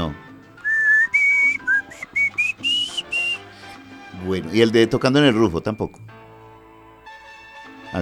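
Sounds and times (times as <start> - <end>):
whistled melody from a band's song: 0.6 - 3.8
speech: 4.3 - 6.2.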